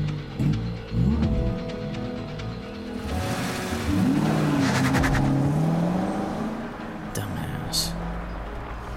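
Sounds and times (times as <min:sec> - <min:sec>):
car engine revving and accelerating in a street race: 0:00.0 - 0:02.0, 0:02.8 - 0:07.2
loud road noise: 0:00.0 - 0:08.9.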